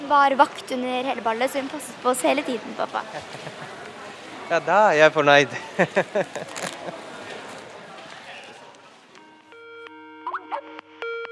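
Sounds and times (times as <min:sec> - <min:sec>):
busy noise: 0:00.0 - 0:11.2
speech: 0:00.1 - 0:03.8, 0:04.5 - 0:07.0
laughter: 0:02.9 - 0:03.9, 0:05.5 - 0:07.4
phone ringing with electronic ringtone for incoming call: 0:09.2 - 0:11.3.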